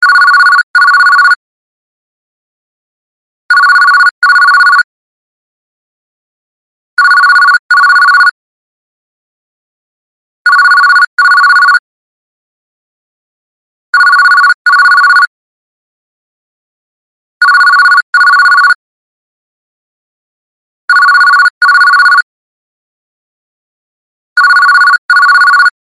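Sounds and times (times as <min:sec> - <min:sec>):
landline phone ringing: 0:00.0 - 0:01.4, 0:03.5 - 0:04.9, 0:07.0 - 0:08.4, 0:10.5 - 0:11.8, 0:13.9 - 0:15.3, 0:17.4 - 0:18.8, 0:20.9 - 0:22.3, 0:24.4 - 0:25.8.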